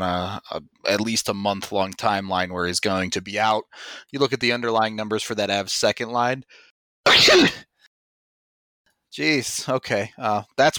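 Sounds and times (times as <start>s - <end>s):
speech: 0.0s - 7.7s, 9.1s - 10.7s
loud sneeze: 7.1s - 7.7s.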